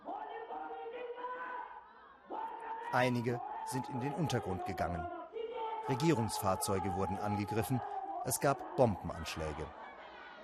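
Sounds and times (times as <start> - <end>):
crowd of Gorkha protesters shouting at a demonstration in India: 0.0 - 10.4
speech: 2.9 - 5.2, 5.9 - 9.8.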